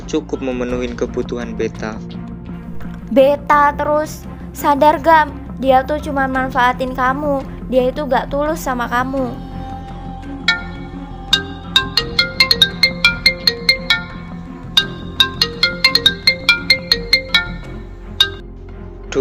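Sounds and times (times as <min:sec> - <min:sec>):
speech: 0:00.1 - 0:02.2, 0:03.1 - 0:09.4
mobile phone ringtone for an incoming call: 0:10.5 - 0:18.4.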